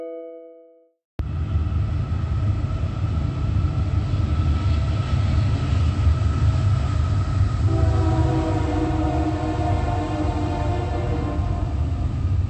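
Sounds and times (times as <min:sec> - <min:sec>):
train passing on railroad tracks: 0:01.2 - 0:12.4
sustained train horn: 0:07.6 - 0:12.1.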